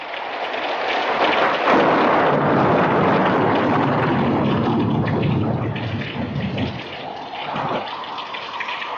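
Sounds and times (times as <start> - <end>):
stormy night wind and rain gusting through an opened window: 0.0 - 8.9
deep rumbling of a storm: 1.7 - 8.1.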